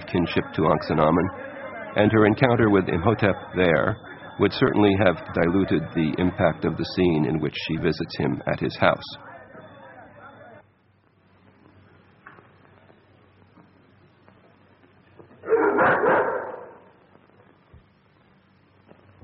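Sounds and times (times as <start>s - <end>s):
faint murmuring background: 0.0s - 19.2s
speech: 0.1s - 9.2s
frightened dog barking and yelping: 15.4s - 16.9s.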